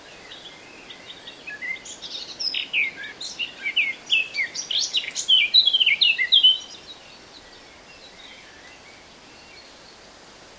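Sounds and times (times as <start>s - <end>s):
faint background hiss: 0.0s - 10.5s
Eurasian blackcap Sylvia atricapilla warbling song: 0.2s - 7.0s.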